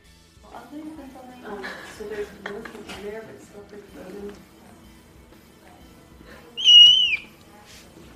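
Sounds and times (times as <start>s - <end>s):
clouded leopard cubs shrill squeak: 6.6s - 7.3s.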